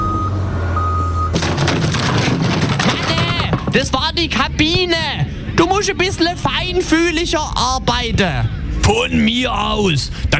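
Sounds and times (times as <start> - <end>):
crane truck reversing beeps: 0.0 - 1.4
crane truck engine rumble: 0.0 - 10.3
speech: 3.8 - 10.3.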